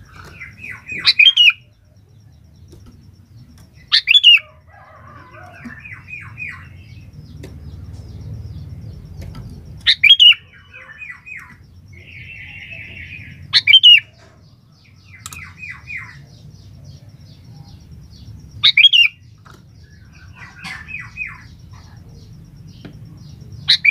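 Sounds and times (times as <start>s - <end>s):
Sooty-headed bulbul song: 0.0s - 23.8s.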